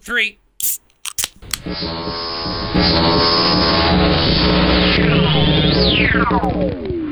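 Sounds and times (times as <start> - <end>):
speech: 0.1 - 0.4, 1.6 - 7.0
energy drink cans snapped open at microphone: 0.6 - 1.6
loud steady whirring drone sweeping in pitch: 1.7 - 7.1.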